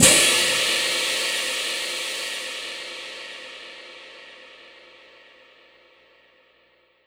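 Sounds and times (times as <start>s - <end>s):
orchestral crash cymbals: 0.0s - 4.8s.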